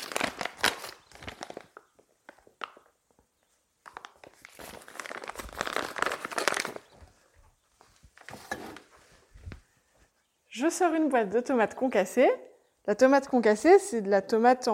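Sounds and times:
paper flour bag crinkling and rustling: 0:00.0 - 0:02.7, 0:03.8 - 0:07.2
speech: 0:10.6 - 0:14.7.

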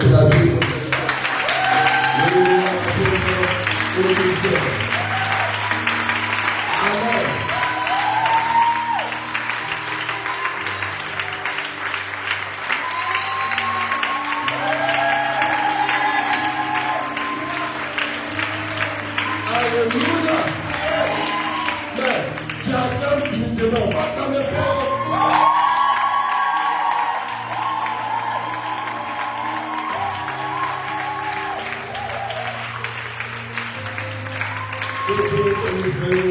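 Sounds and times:
church congregation clapping during a French-language worship service: 0:00.0 - 0:36.2.

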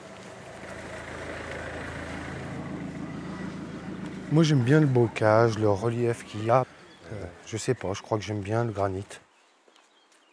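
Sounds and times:
car driving past: 0:00.0 - 0:07.5
speech: 0:04.3 - 0:09.2.

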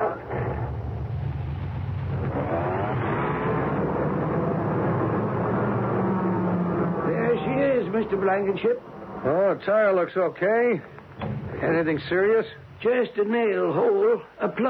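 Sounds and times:
car engine idling and revving while backed out of a shop: 0:00.3 - 0:07.7
speech: 0:08.0 - 0:11.0, 0:11.6 - 0:14.6.

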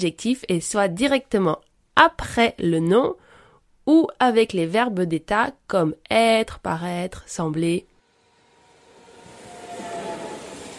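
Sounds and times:
speech: 0:00.0 - 0:03.3, 0:03.9 - 0:07.9
fast train rushing past: 0:08.0 - 0:10.7
thin metallic whine of passing train: 0:08.0 - 0:10.7.

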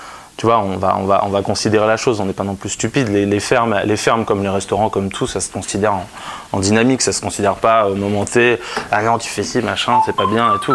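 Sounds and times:
person talking rapidly: 0:00.4 - 0:10.7
speech: 0:00.4 - 0:10.7
restaurant telephone ringing with a steady electronic tone: 0:09.9 - 0:10.7.

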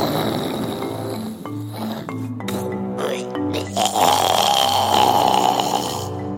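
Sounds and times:
deep growling dinosaur snore: 0:00.0 - 0:06.3
steady musical tones: 0:00.0 - 0:06.3.

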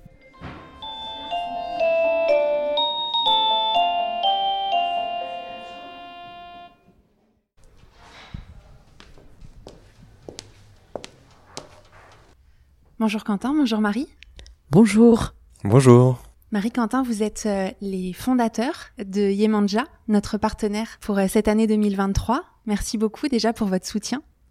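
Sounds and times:
melodic doorbell chime at a company office: 0:00.2 - 0:06.9
speech: 0:13.0 - 0:24.3.

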